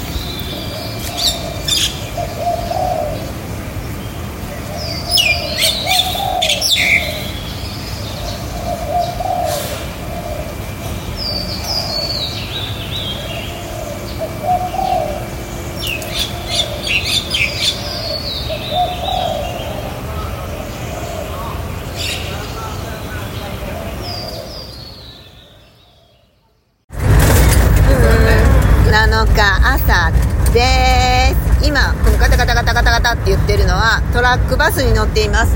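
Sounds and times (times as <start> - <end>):
birds chirping and tweeting in a park in Chiang Mai: 0.0 - 35.5
dove cooing in a park in Chiang Mai: 0.6 - 3.4, 4.7 - 7.3, 8.1 - 12.2, 13.3 - 22.4.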